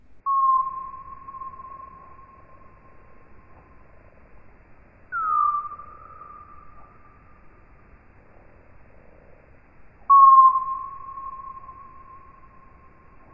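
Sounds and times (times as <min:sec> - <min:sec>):
faint hiss: 0:00.0 - 0:13.3
noctule bat echolocation calls in flight slowed into audible range: 0:00.3 - 0:02.6, 0:05.1 - 0:07.0, 0:10.1 - 0:12.3.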